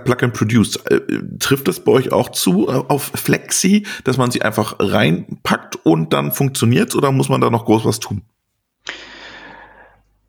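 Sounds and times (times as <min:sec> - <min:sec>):
speech: 0:00.0 - 0:09.1
heavy breathy exhale: 0:08.8 - 0:10.0.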